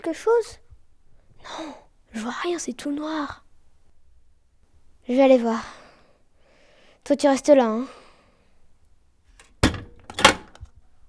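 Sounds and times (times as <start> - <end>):
speech: 0.0 - 0.6, 1.4 - 3.4, 5.1 - 5.8, 7.0 - 8.0
door closing with a heavy thud: 9.4 - 10.6.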